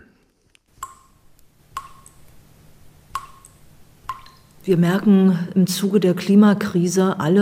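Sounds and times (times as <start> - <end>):
quiet room hum: 0.0 - 7.3
water dripping from a faucet: 0.8 - 2.4, 3.0 - 4.8
speech: 4.7 - 7.3.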